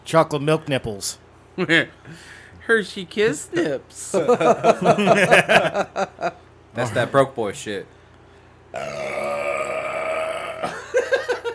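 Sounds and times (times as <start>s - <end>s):
speech: 0.1s - 8.0s, 8.7s - 9.2s
laughter: 3.6s - 6.4s, 10.7s - 11.5s
long loud croaking burp: 8.7s - 11.0s.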